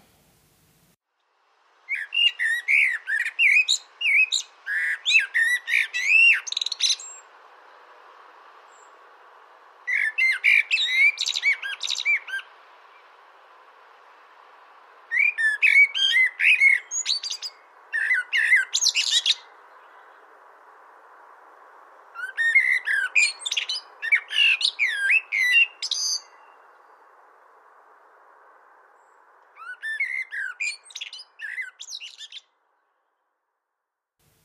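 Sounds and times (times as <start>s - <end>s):
common blackbird singing fluting melodious phrases: 1.9s - 7.2s, 9.9s - 12.5s, 15.1s - 20.2s, 22.2s - 26.6s, 29.0s - 32.5s.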